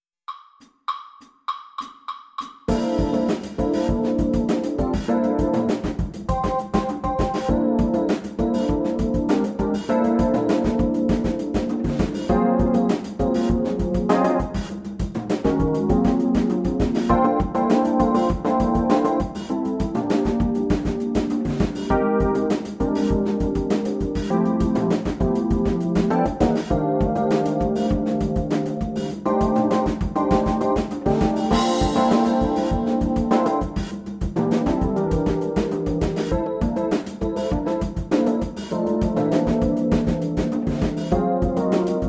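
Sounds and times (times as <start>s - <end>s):
jazz funk bass etude: 2.7s - 42.0s.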